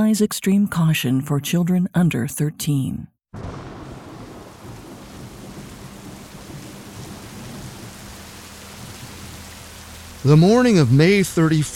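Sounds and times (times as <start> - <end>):
speech: 0.0 - 3.6, 10.2 - 11.7
deep rumbles of thunder: 3.3 - 10.6
heavy rain: 3.4 - 11.7.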